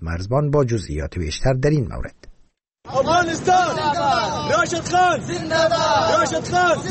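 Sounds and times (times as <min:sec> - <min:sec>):
speech: 0:00.0 - 0:02.3, 0:02.9 - 0:06.9
Afghan cricket fans chanting and cheering in a stadium at a cricket match: 0:02.9 - 0:06.9.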